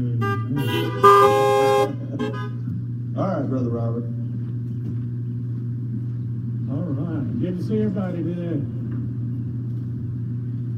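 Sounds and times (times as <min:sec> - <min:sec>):
several car horns honking: 0:00.0 - 0:02.7
low idling rumble: 0:00.0 - 0:10.7
speech: 0:03.2 - 0:04.2, 0:06.9 - 0:08.8.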